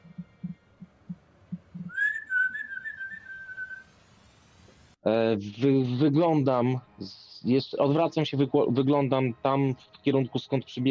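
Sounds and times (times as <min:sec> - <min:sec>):
low throbbing pulses: 0:00.0 - 0:02.0
sustained high whistle: 0:01.9 - 0:03.9
speech: 0:05.1 - 0:10.9.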